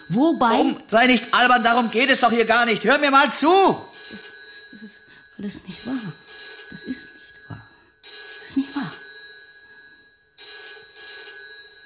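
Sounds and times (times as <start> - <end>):
telephone bell ringing: 0.0 - 11.8
speech: 0.1 - 4.2, 4.8 - 7.1.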